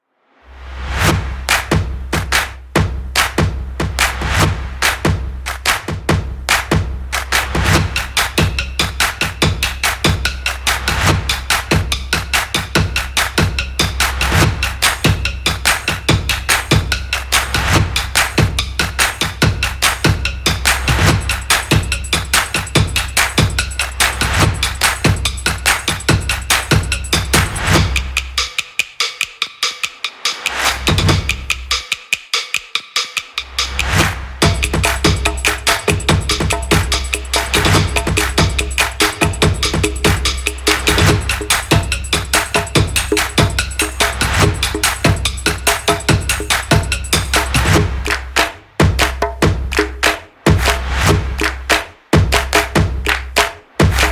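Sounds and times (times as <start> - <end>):
upbeat drum percussion background music: 0.9 - 54.1.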